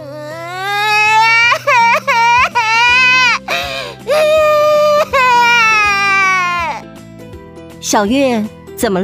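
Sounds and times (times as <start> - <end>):
young child crying: 0.0 - 6.8
speech: 7.9 - 9.0.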